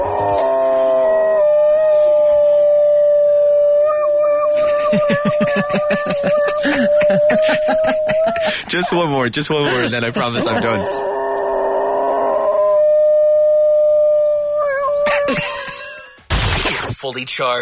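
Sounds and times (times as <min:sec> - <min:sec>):
dog howling like a siren: 0:00.0 - 0:08.6, 0:10.5 - 0:15.5
laughter: 0:04.6 - 0:11.0, 0:15.0 - 0:16.1
speech: 0:04.9 - 0:11.2, 0:17.1 - 0:17.5.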